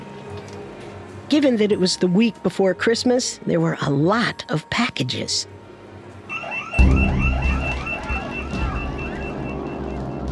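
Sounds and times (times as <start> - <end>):
speech: 1.3 - 5.6
security scanner alarm blaring: 6.3 - 10.3.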